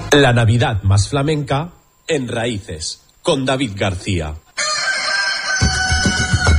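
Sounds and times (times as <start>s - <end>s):
speech: 0.1s - 4.4s
rooster crowing: 4.6s - 6.5s.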